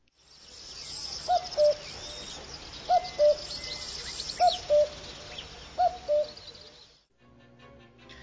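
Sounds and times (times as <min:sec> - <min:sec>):
other birdsong: 0:00.2 - 0:07.1
real common cuckoo calling: 0:00.8 - 0:06.9.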